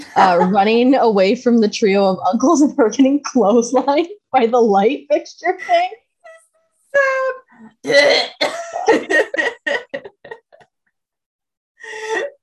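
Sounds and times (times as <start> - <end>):
laughter: 0.0 - 0.8, 8.5 - 10.7
speech: 0.2 - 6.0, 6.9 - 10.1
person imitating harsh guttural choking throat noises: 7.8 - 8.9.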